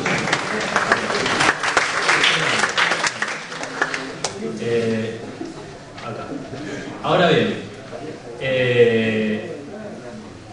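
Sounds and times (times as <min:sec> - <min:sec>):
room full of people applauding: 0:00.0 - 0:04.6
voices murmuring: 0:03.9 - 0:10.5
speech: 0:07.1 - 0:07.6.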